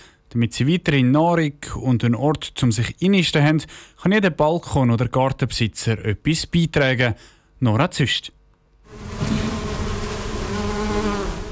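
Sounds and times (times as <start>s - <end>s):
speech: 0.3s - 9.2s
dense steady buzzing of many bees: 8.9s - 11.4s.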